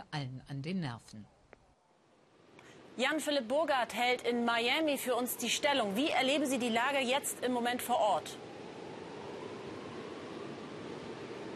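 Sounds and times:
speech: 0:00.1 - 0:01.4, 0:03.0 - 0:08.5
heavy rain: 0:02.7 - 0:11.5.

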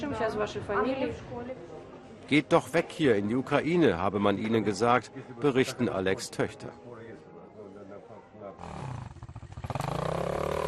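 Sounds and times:
speech: 0:00.1 - 0:06.9
motocross motorcycle engines revving: 0:08.6 - 0:10.6.

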